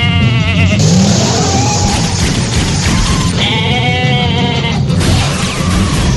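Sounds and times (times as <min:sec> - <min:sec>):
goat bleating: 0:00.0 - 0:01.9, 0:03.0 - 0:05.0
steady rumbling background: 0:00.3 - 0:06.1.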